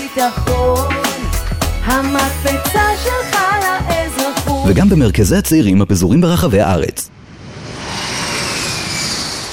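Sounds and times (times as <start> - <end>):
speech: 0.2 - 1.0, 1.8 - 7.1
jet airplane taking off: 7.1 - 9.5.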